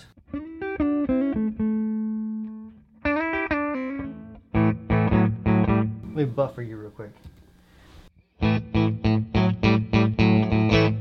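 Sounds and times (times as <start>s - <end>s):
clean electric guitar through an amp with bass high and treble low: 0.1s - 6.1s, 8.4s - 11.0s
speech: 6.2s - 7.3s.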